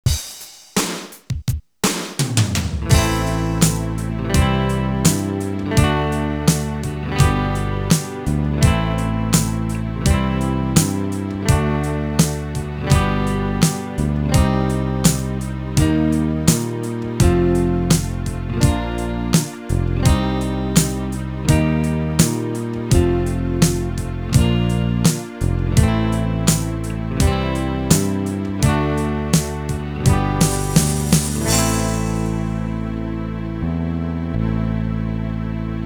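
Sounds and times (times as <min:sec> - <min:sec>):
backing track music: 0:01.9 - 0:35.8.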